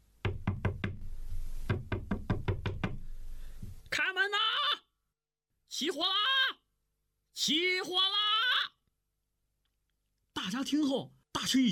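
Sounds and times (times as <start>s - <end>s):
man knocking loudly on a locked door: 0.2s - 1.0s, 1.7s - 3.8s
man shouting: 4.0s - 4.9s, 5.7s - 6.6s, 7.4s - 8.8s
speech: 5.8s - 6.6s, 7.4s - 8.3s, 10.5s - 11.7s.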